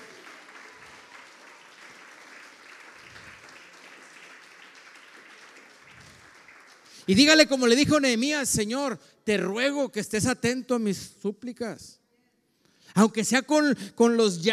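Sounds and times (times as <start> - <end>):
audience applauding: 0.0 - 7.8
speech: 7.1 - 12.0, 12.9 - 14.5.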